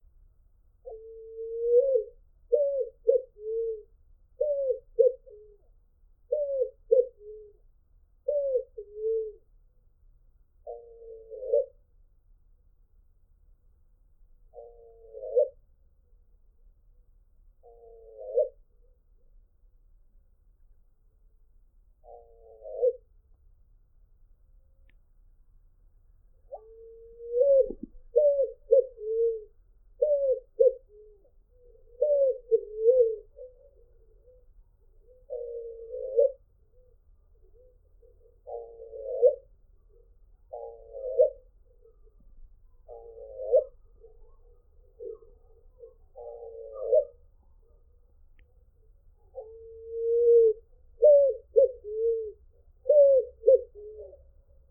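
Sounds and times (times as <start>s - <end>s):
pomba asa-branca dove singing: 0.8s - 9.5s, 10.6s - 11.8s, 14.5s - 15.6s, 17.6s - 18.7s, 22.0s - 23.1s, 26.4s - 54.6s.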